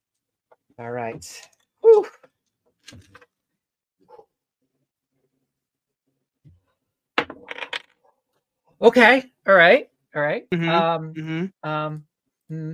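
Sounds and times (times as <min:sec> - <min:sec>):
speech: 0:00.8 - 0:02.2, 0:02.9 - 0:03.2, 0:08.8 - 0:12.7
dice rolling on a mat: 0:07.2 - 0:08.0.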